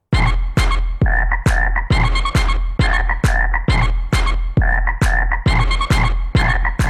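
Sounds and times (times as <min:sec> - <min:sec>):
electronic dance beat with thumping kick: 0:00.1 - 0:06.8
sampled frog croaks: 0:01.0 - 0:02.2, 0:02.8 - 0:06.8.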